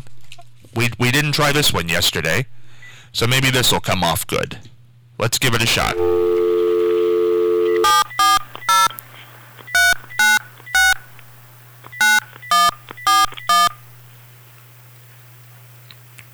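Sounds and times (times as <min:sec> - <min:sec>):
speech: 0:00.8 - 0:06.3
low hum: 0:05.8 - 0:16.3
telephone dial tone: 0:05.9 - 0:14.6
telephone touch-tone keypress beeps: 0:06.0 - 0:11.3, 0:11.9 - 0:13.8.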